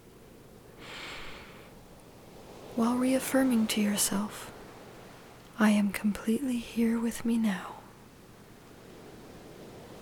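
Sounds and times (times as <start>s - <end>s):
steady hiss of noise: 0.0s - 10.0s
deep clearing breath during a guided meditation: 0.8s - 1.8s
speech: 2.8s - 4.6s, 5.6s - 7.8s.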